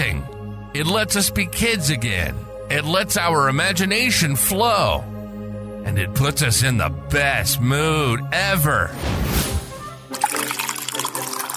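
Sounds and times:
speech: 0.8 - 5.1, 5.8 - 9.5
beverage pouring into a cup: 10.1 - 11.5.

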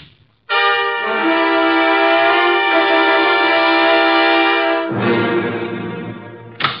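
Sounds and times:
steady held musical chord: 0.5 - 6.6.

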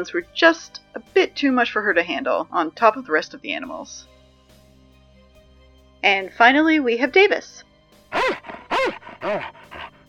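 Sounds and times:
speech: 0.0 - 4.1, 6.0 - 8.3, 9.2 - 9.6
adult purebred German Shepherd dog barking: 8.1 - 10.0.

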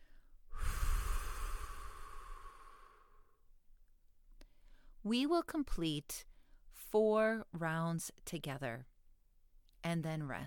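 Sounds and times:
breathy whoosh of air breathed in through the nose and out through the mouth: 0.0 - 3.4
speech: 5.0 - 8.9, 9.8 - 10.4.

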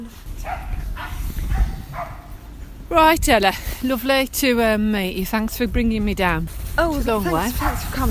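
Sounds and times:
dogs yapping: 0.4 - 2.5
speech: 2.9 - 8.0.

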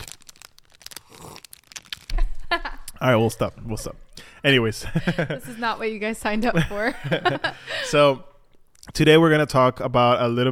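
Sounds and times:
crinkling and crackling while someone eats fruit snacks: 0.0 - 3.5, 8.5 - 9.0
speech: 3.0 - 8.3, 9.0 - 10.5
laughter: 4.8 - 5.7, 6.6 - 8.0.

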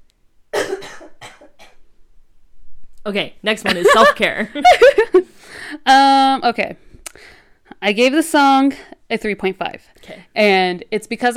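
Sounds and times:
harsh coughing: 0.5 - 1.8
speech: 3.0 - 11.3.

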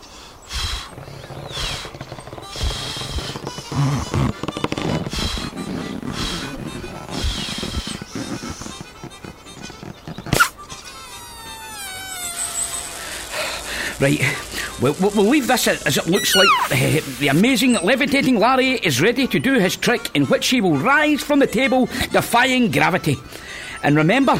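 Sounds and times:
balloon being blown up and twisted into a dog shape, rubbery squeaks: 0.6 - 18.0
balloon sharp snap: 10.3 - 10.6, 11.2 - 17.3
speech: 14.0 - 24.3.

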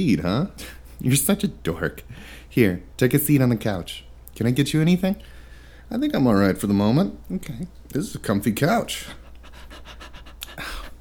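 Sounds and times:
speech: 0.0 - 9.2
dog panting: 9.1 - 10.9.

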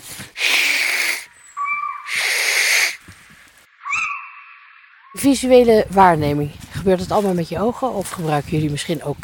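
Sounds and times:
little owl parent giving long harsh hissing calls to its young: 0.3 - 3.1, 3.8 - 4.6
little owl giving short rising whistled notes: 0.7 - 3.0, 3.8 - 5.2
speech: 5.2 - 9.2.

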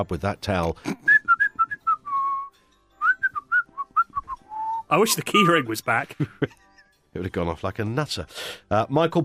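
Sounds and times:
speech: 0.0 - 1.1, 4.9 - 6.6, 7.2 - 9.2
person whistling a quick bouncy tune: 0.9 - 4.9.

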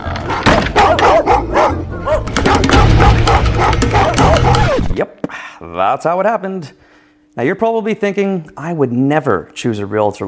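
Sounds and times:
several dogs barking: 0.2 - 5.0
speech: 5.8 - 10.2.

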